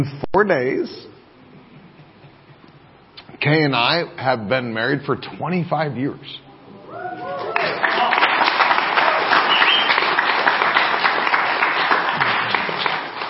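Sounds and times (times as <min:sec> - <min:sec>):
speech: 0:00.0 - 0:01.1, 0:03.4 - 0:07.4
crowd clapping and cheering: 0:07.0 - 0:13.2.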